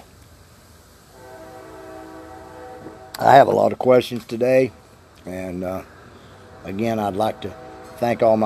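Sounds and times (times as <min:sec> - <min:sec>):
low rumble of a passing train: 0:00.5 - 0:08.4
train horn blaring a sustained chord: 0:01.1 - 0:03.6, 0:05.7 - 0:08.4
speech: 0:03.2 - 0:05.9, 0:06.6 - 0:08.4.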